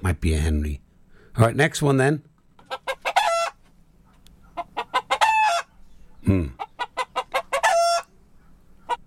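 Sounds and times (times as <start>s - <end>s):
speech: 0.1s - 0.8s, 1.4s - 2.3s, 6.2s - 6.6s
hen clucking: 2.6s - 9.0s.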